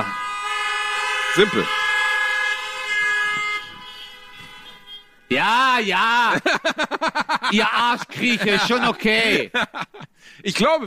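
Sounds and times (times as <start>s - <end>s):
car horns honking: 0.0s - 9.4s
faint hum of traffic: 0.0s - 10.8s
speech: 1.4s - 1.8s, 5.3s - 10.8s
laughter: 5.9s - 10.2s.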